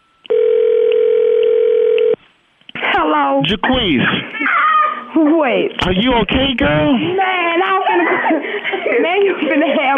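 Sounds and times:
telephone ringing tone through a phone line: 0.0 - 2.2
speech: 3.4 - 4.6, 5.2 - 9.9
laughter: 4.1 - 5.1, 7.6 - 9.9.

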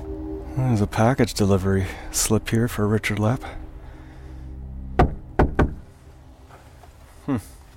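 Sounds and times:
speech: 0.7 - 3.6, 7.3 - 7.6
firm knocks on the front door of a house in snow: 5.0 - 5.8.

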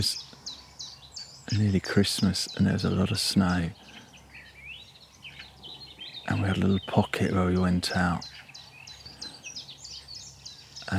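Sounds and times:
speech: 0.0 - 0.4, 1.5 - 3.8, 6.3 - 8.4
nightingales singing at dawn in Dorset: 0.0 - 10.9.

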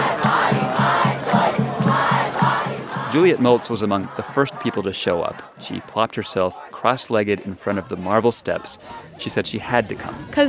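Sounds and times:
rhythmic pulse: 0.0 - 6.0
crowd of voices outside a court building: 0.0 - 10.4
speech: 3.1 - 10.4.

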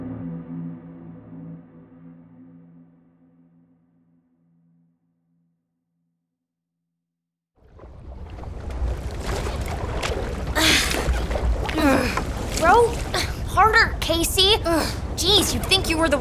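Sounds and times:
rowboat splashing through water: 7.6 - 16.1
squeaky creaks: 10.6 - 13.3
speech: 14.6 - 16.1.

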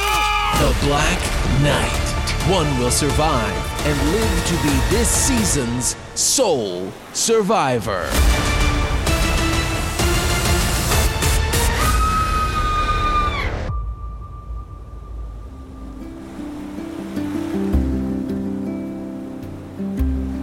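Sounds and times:
ocean waves crashing: 0.0 - 20.4
speech: 0.8 - 8.6.

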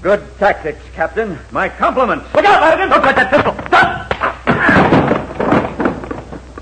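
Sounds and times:
speech: 0.0 - 4.0
man thrown with a judo move and slammed down: 3.4 - 6.6.

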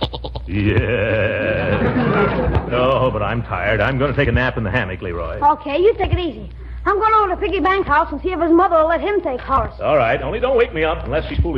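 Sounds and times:
goat in a temporary goat pen bleating: 0.0 - 1.2
speech: 0.5 - 1.3, 3.1 - 11.5
laughter: 0.5 - 3.4.

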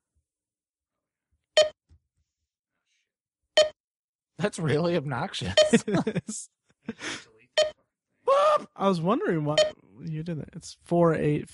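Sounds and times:
short electronic beeps from a laptop: 1.6 - 1.8, 3.6 - 3.8
speech: 4.4 - 7.3, 8.8 - 11.5
laughter: 5.4 - 7.2.

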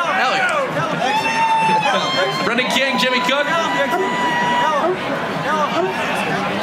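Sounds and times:
outdoor crowd chatter at a plaza: 0.0 - 6.6
speech: 2.0 - 6.6.

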